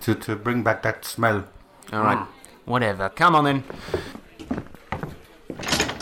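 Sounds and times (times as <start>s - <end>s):
speech: 0.0s - 4.1s
faint murmur: 0.0s - 6.0s
door opening with scraping and thudding: 5.5s - 6.0s.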